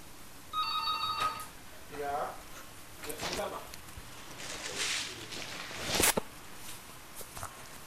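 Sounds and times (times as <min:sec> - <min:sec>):
telephone ringing with a bright electronic tone: 0:00.5 - 0:01.6
shuffling movement: 0:03.1 - 0:07.7.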